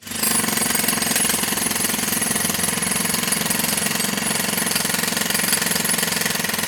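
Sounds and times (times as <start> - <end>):
pneumatic jackhammer breaking through hard concrete: 0.0 - 6.6.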